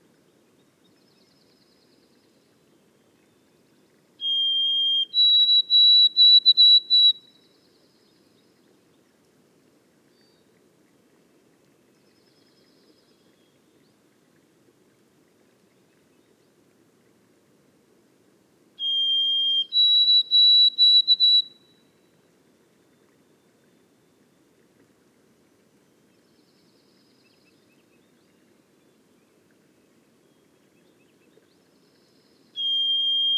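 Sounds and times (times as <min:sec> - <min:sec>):
White-throated sparrow whistled song in boreal forest: 0:04.2 - 0:07.2, 0:18.8 - 0:21.7, 0:32.6 - 0:33.3.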